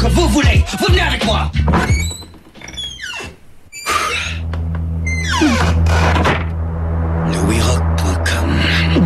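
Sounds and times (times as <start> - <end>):
speech: 0.2 - 2.1
door creaking open with squealing grinding hinges: 1.5 - 6.5
steady low hum: 3.4 - 9.0.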